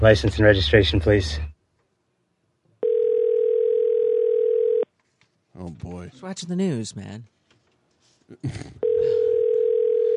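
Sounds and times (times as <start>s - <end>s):
speech: 0.0s - 1.5s, 5.6s - 7.3s, 8.3s - 9.2s
telephone line tone from an outgoing phone call: 2.8s - 4.8s, 8.8s - 10.1s.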